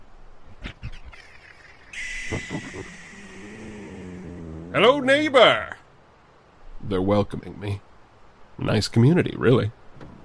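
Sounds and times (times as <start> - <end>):
bird calling, possibly an owl: 0.8 - 4.8
steady high-pitched hiss: 2.0 - 4.9
speech: 4.7 - 5.7, 6.9 - 7.9, 8.6 - 9.8.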